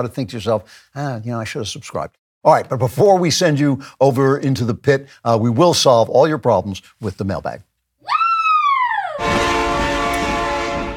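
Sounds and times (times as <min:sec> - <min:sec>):
speech: 0:00.0 - 0:07.7
loud train horn blaring: 0:09.2 - 0:10.9.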